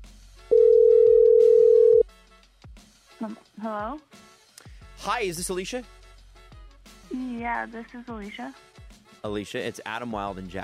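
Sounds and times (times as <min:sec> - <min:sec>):
telephone dial tone as a phone call is placed: 0:00.5 - 0:02.0
speech: 0:03.2 - 0:04.2, 0:05.0 - 0:06.0, 0:07.1 - 0:10.6.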